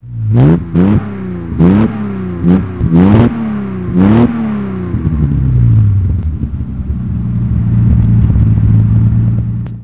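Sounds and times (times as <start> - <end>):
E-Type car: 0.0 - 9.8.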